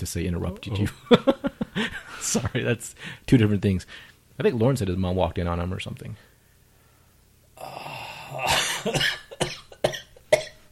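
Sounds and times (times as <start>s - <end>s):
speech: 0.0s - 6.3s, 7.6s - 9.2s
person coughing harshly: 7.7s - 10.7s.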